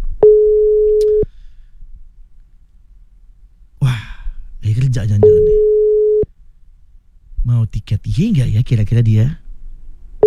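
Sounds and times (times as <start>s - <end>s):
quiet telephone line noise: 0.0s - 10.2s
telephone call tone beep: 0.2s - 1.3s, 5.2s - 6.3s
speech: 5.0s - 5.6s, 7.7s - 9.4s.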